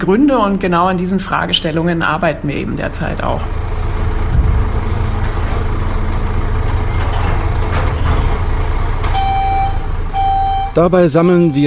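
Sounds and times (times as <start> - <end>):
speech: 0.0 - 3.7, 10.8 - 11.6
garbage truck engine idling while collecting yellow plastic bags: 0.0 - 11.6
clunks and rustles: 3.5 - 10.2
short high electronic beep: 9.2 - 11.6.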